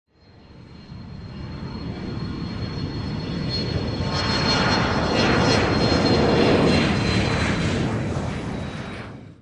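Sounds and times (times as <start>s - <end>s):
airport ambience: 0.6s - 7.9s.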